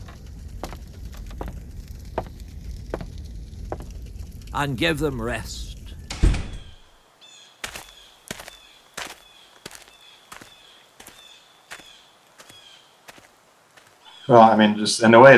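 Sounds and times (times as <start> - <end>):
footsteps walking at an even pace: 0.0 - 4.0, 7.6 - 14.1
speech: 4.5 - 5.7, 14.3 - 15.3
heavy door thud: 6.1 - 6.8.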